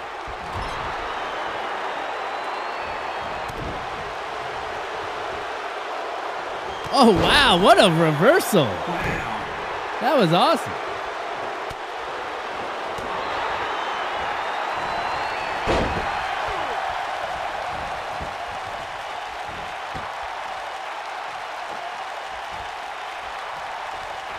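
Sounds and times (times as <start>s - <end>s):
crowd cheering: 0.0s - 24.3s
speech: 6.9s - 9.4s, 10.0s - 10.9s
wrestling slam onto the ring following a dragon screw: 15.5s - 16.6s.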